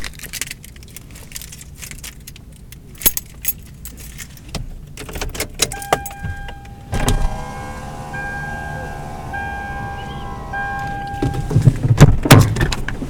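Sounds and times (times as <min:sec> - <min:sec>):
car door opening: 0:05.1 - 0:12.9
steady electronic chime ringing: 0:05.7 - 0:11.6.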